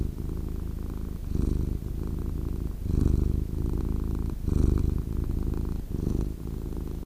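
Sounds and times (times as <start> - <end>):
cat purring: 0.0 - 7.0.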